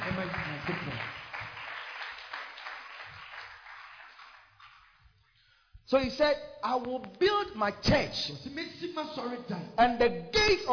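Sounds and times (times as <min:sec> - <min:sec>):
church congregation clapping: 0:00.0 - 0:05.4
speech: 0:05.9 - 0:10.7.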